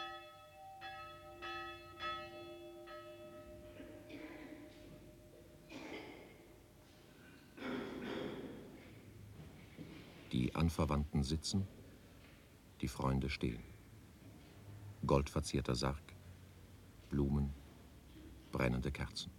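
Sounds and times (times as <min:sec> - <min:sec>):
church death knell bell tolling for a funeral at a cemetery near Sopron: 0:00.0 - 0:06.9
speech: 0:10.3 - 0:11.8, 0:12.8 - 0:13.7, 0:15.0 - 0:16.1, 0:17.1 - 0:17.6, 0:18.5 - 0:19.3.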